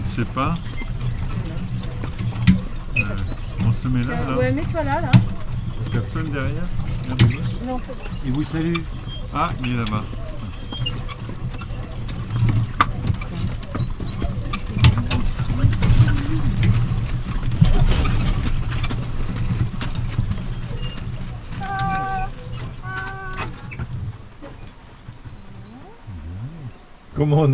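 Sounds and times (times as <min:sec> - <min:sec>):
horse hooves clip-clopping: 0:00.0 - 0:27.5
low continuous rumble: 0:00.0 - 0:27.5
speech: 0:00.2 - 0:00.8, 0:03.0 - 0:10.2, 0:27.2 - 0:27.5
tonal harmonic sound: 0:25.3 - 0:27.5.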